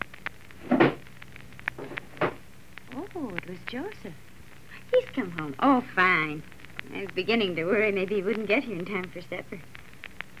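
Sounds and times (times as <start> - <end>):
door banging shut: 0.7 - 1.0, 1.8 - 2.4
speech: 3.1 - 4.3, 4.9 - 9.8.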